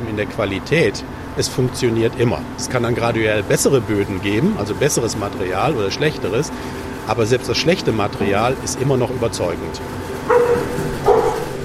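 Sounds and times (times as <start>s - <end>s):
low hum: 0.0s - 11.6s
speech: 0.2s - 10.4s
Labrador-mix dog barking: 10.3s - 11.6s.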